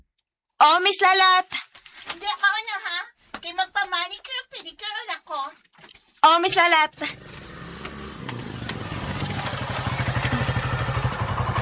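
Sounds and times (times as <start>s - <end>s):
speech: 0.6s - 7.4s
motorcycle engine puttering: 6.9s - 11.6s.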